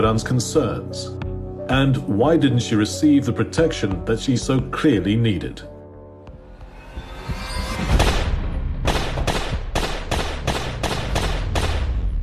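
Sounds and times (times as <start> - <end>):
speech: 0.0 - 5.7
gunshots fired in broad daylight: 7.9 - 12.1.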